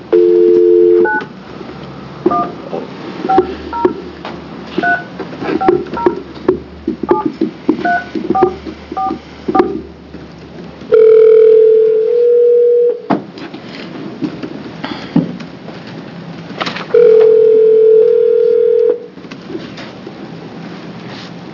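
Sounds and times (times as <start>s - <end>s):
long steady telephone dial tones or ringing: 0.1s - 1.3s, 10.9s - 13.0s, 16.9s - 19.1s
telephone keypad beeps: 0.2s - 1.3s, 2.3s - 2.6s, 3.3s - 4.0s, 4.8s - 6.3s, 7.0s - 9.8s.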